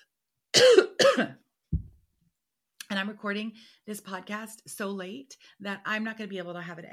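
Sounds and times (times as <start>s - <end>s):
person coughing: 0.5s - 1.4s
speech: 1.0s - 1.4s, 2.9s - 6.9s.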